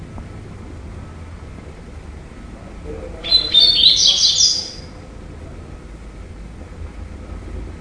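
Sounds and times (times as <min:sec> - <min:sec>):
Double-collared seedeater song with high twittering and lower buzzy notes: 0:03.2 - 0:05.0.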